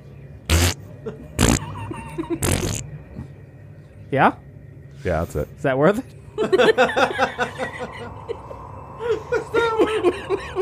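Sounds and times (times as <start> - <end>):
voice imitating a fart into a bowl of water: 0.5 - 0.8, 1.4 - 1.8, 2.4 - 2.8
speech: 1.0 - 2.9, 4.1 - 4.4, 5.0 - 8.4
laughter: 6.4 - 10.6.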